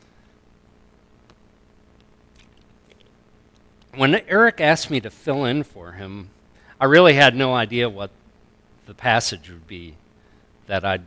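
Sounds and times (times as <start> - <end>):
low hiss: 0.0 - 11.0
person sipping a drink: 2.3 - 3.1
swallowing: 2.3 - 3.2
wet mouth clicks: 2.3 - 3.9
speech: 4.0 - 8.2, 8.9 - 10.0, 10.7 - 11.0.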